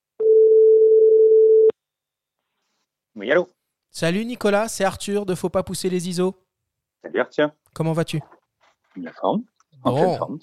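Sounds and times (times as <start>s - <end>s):
telephone ringback tone on an outgoing call: 0.2s - 1.7s
speech: 3.2s - 6.4s, 7.0s - 8.4s, 9.0s - 10.4s.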